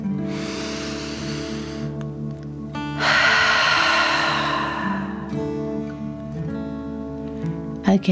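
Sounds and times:
deep breathing in and out through the mouth: 0.0 - 2.0, 2.8 - 6.1
soft music: 0.0 - 8.0.

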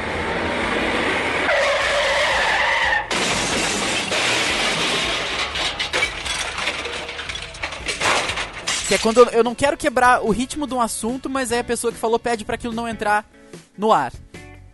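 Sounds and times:
tires screeching in a long skid: 0.0 - 6.1
loud car crash impact: 1.5 - 9.3
crunching shattering debris: 3.1 - 9.5
speech: 8.9 - 14.2.

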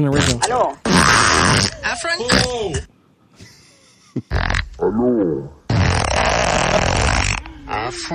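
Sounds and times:
speech: 0.0 - 3.5, 4.2 - 5.6, 7.7 - 8.1
loud sustained sputtering fart: 0.1 - 2.5, 4.3 - 4.8, 5.7 - 7.9.

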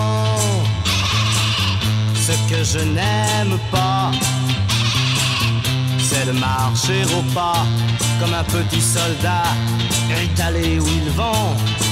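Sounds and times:
sheep bleating: 0.4 - 2.6, 4.6 - 6.3
speech: 2.6 - 4.6, 6.2 - 11.8.

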